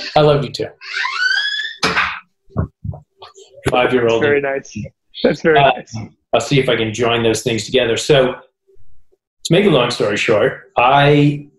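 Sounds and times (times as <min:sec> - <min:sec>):
speech: 0:00.2 - 0:01.0, 0:03.7 - 0:08.5, 0:09.5 - 0:11.5
door creaking and banging shut: 0:00.8 - 0:02.9
softer dull thumps: 0:01.8 - 0:03.2.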